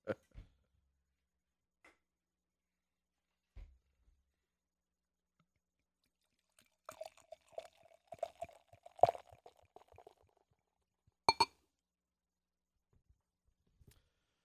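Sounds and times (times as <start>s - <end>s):
barrel-aged stout pouring into a glass: 6.0s - 10.3s.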